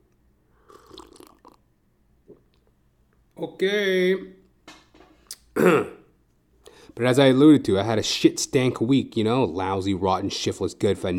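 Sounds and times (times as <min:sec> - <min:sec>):
slurping sips of coffee: 0:00.6 - 0:01.6
small gulp of coffee: 0:00.6 - 0:01.6
speech: 0:03.4 - 0:04.4, 0:05.6 - 0:06.0, 0:07.0 - 0:11.1.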